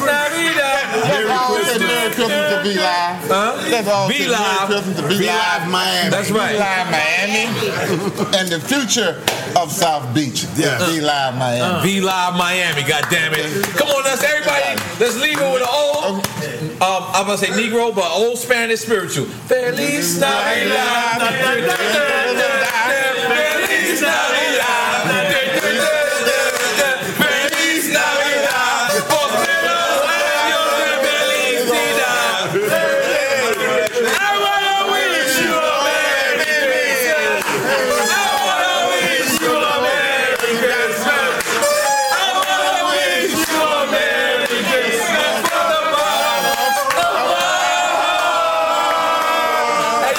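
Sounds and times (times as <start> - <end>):
crowd singing together: 0.0 - 8.0, 19.6 - 50.0
speech: 2.6 - 25.2
rhythmic hand clapping: 9.2 - 9.5, 12.0 - 16.4, 21.2 - 31.8, 32.6 - 48.4.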